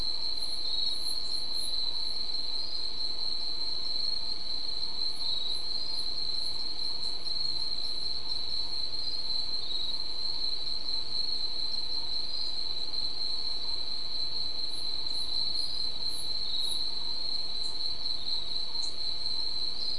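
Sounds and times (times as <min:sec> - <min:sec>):
insects: 0:00.0 - 0:19.9.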